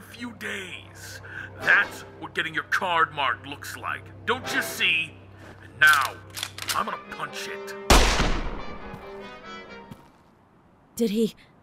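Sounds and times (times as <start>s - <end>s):
speech: 0.2s - 5.2s, 5.8s - 8.4s, 11.0s - 11.5s
single loud gunshot in a dramatized scene: 7.9s - 8.9s.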